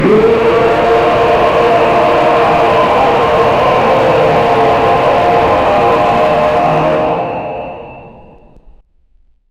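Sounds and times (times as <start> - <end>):
massive discordant roar: 0.0 - 8.6.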